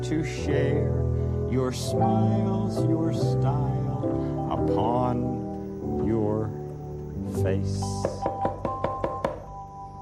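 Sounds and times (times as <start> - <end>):
speech: 0.0 - 6.6, 7.2 - 8.6
knocking on a door: 8.0 - 9.6.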